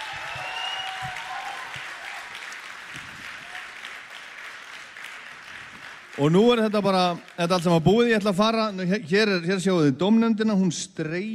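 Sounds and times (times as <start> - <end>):
audience applause at a contest: 0.0 - 8.1
speech: 6.2 - 11.3.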